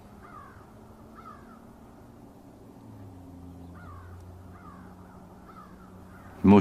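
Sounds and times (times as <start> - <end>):
low rumble of traffic: 0.0 - 6.6
crow cawing: 0.1 - 1.8, 3.7 - 6.5
speech: 6.4 - 6.6.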